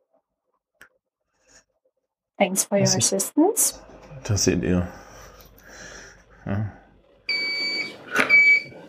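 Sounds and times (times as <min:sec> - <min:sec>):
speech: 0:02.4 - 0:05.0, 0:06.4 - 0:06.6
electronic timer beeping tone: 0:07.3 - 0:08.7.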